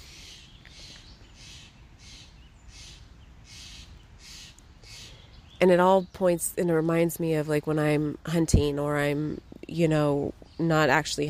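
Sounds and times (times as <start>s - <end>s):
crows and scrub jays squabbling with harsh raspy calls: 0.0s - 5.2s
speech: 5.6s - 11.2s.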